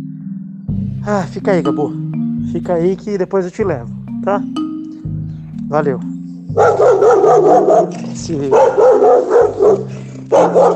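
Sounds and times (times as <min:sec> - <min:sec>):
speech: 0:01.0 - 0:04.6, 0:05.7 - 0:10.7
neighbor's dog barking: 0:06.6 - 0:10.7.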